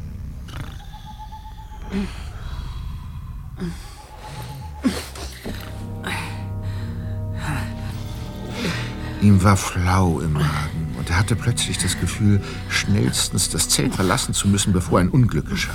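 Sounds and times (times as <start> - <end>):
low hum in a quiet nighttime background: 0.0 - 15.7
two people breathing while sleeping in a tent at night: 0.5 - 9.2
speech: 1.9 - 2.3, 3.6 - 3.9, 9.2 - 15.7.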